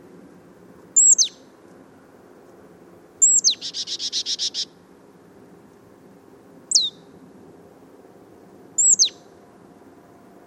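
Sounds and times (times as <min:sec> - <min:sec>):
marsh tit calling, Poecile palustris: 0:01.0 - 0:01.4, 0:03.2 - 0:04.7, 0:06.7 - 0:07.1, 0:08.8 - 0:09.2.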